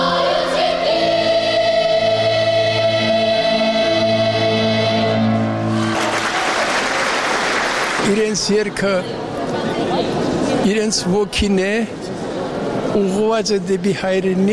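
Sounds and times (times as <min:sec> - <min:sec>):
sustained musical tones: 0:00.0 - 0:07.7
audience applauding in a full concert hall: 0:05.7 - 0:08.4
speech: 0:08.5 - 0:09.3, 0:10.0 - 0:12.1, 0:13.0 - 0:14.5.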